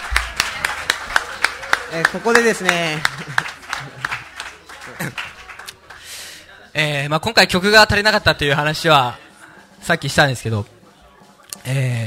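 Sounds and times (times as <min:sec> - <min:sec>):
steady evenly spaced handclaps: 0:00.0 - 0:06.1
speech: 0:01.9 - 0:03.3, 0:05.0 - 0:05.3, 0:06.8 - 0:09.2, 0:09.8 - 0:10.7, 0:11.6 - 0:12.0.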